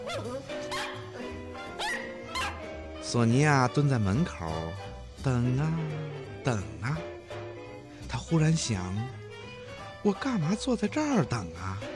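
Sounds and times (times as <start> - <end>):
small dog barking: 0.0 - 2.7
speech: 3.1 - 7.1, 8.2 - 9.2, 10.0 - 11.9.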